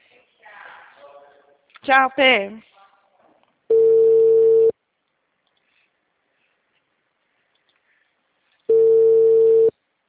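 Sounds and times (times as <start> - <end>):
speech: 1.8 - 2.7
ringback tone of an outgoing telephone call: 3.7 - 4.7, 8.7 - 9.7.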